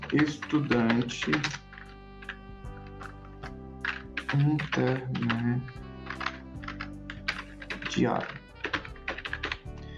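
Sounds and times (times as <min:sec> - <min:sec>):
typing on a computer keyboard: 0:00.0 - 0:09.8
speech: 0:00.1 - 0:01.6, 0:04.3 - 0:05.8, 0:07.9 - 0:08.4.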